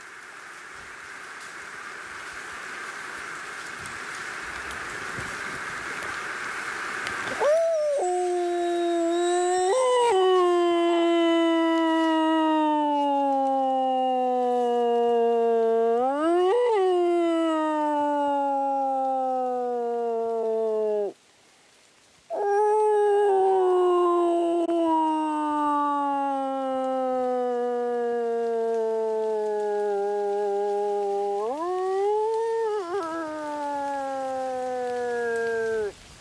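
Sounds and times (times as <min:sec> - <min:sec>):
steady hiss: 0:00.0 - 0:36.1
wolf howling: 0:07.2 - 0:21.2, 0:22.3 - 0:36.0.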